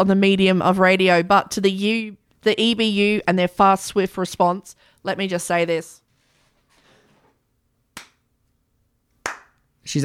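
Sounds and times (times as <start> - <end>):
speech: 0.0 - 6.0
faint rustling: 6.1 - 7.5
sharp hand clap: 7.9 - 8.2, 9.1 - 9.7.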